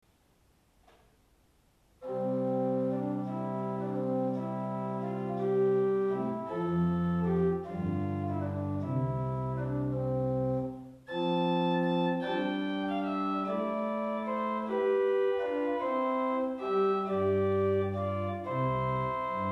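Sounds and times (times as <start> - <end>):
Principal 8 organ stop: 2.0 - 19.5.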